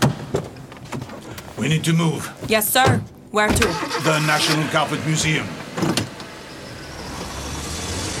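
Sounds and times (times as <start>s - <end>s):
speech: 1.6s - 6.1s
car driving past: 4.6s - 8.1s.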